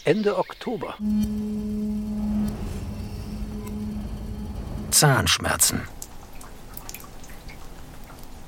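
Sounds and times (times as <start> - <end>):
speech: 0.0 - 1.8, 4.9 - 6.0
low broadband rush: 1.0 - 6.0
water dripping into rain barrels: 6.0 - 8.4.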